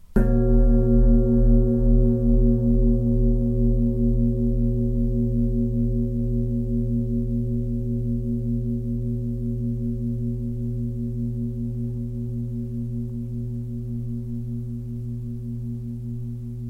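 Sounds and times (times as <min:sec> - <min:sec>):
foot singing bowl: 0:00.1 - 0:16.6.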